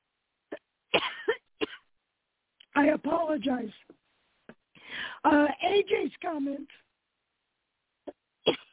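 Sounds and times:
person coughing with a tickle in the throat: 0:00.5 - 0:01.9, 0:08.1 - 0:08.7
speech: 0:02.8 - 0:04.0, 0:05.2 - 0:06.8.

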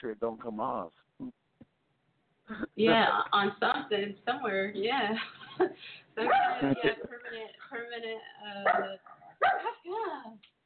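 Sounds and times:
speech: 0:00.0 - 0:01.4, 0:02.5 - 0:10.5
laughter: 0:05.2 - 0:07.2
dog barking: 0:06.2 - 0:06.9, 0:08.6 - 0:09.8.

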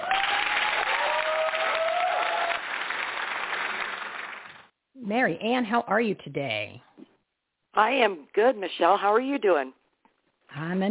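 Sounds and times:
crowd applauding a guest: 0:00.0 - 0:04.7
speech: 0:05.1 - 0:06.9, 0:07.8 - 0:09.8, 0:10.5 - 0:10.8.

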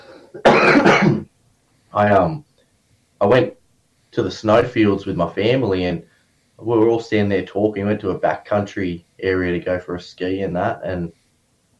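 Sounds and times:
person coughing: 0:00.0 - 0:01.3
speech: 0:02.0 - 0:02.4, 0:03.2 - 0:11.2.

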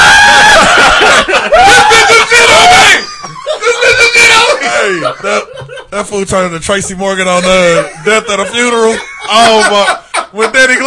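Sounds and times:
person imitating a scream: 0:00.0 - 0:00.7, 0:01.6 - 0:03.1
laughter: 0:00.0 - 0:10.8
speech: 0:06.0 - 0:10.8.

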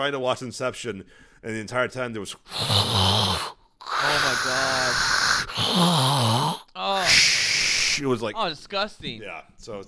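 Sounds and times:
speech: 0:00.0 - 0:07.3, 0:08.0 - 0:09.8
voice imitating a wheelchair user's breathing machine: 0:02.4 - 0:08.1.

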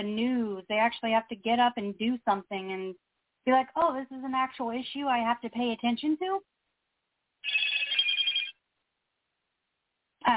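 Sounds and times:
speech: 0:00.0 - 0:06.5
mobile phone ringing with a high-pitched electronic trill: 0:07.4 - 0:08.6.

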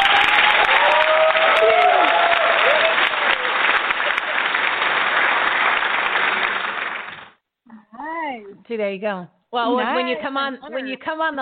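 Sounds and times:
whistles or cheers: 0:00.0 - 0:03.6
crowd applause with dense clapping from many hands: 0:00.0 - 0:07.4
speech: 0:08.7 - 0:11.4.

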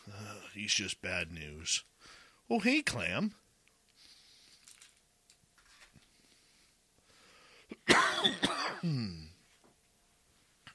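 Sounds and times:
speech: 0:00.6 - 0:03.4, 0:08.2 - 0:09.2
person coughing: 0:07.7 - 0:09.4
gravelly throat clearing: 0:07.8 - 0:09.4.

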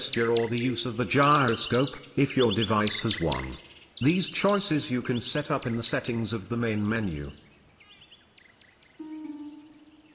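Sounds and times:
bird chirping as it flies by: 0:00.0 - 0:06.3, 0:07.0 - 0:10.1
speech: 0:00.1 - 0:07.4.

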